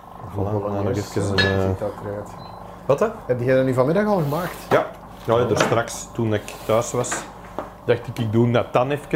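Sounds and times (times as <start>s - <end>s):
speech: 0.4s - 7.3s, 7.9s - 9.1s
plates and cutlery clinking as a table is set: 1.3s - 1.7s.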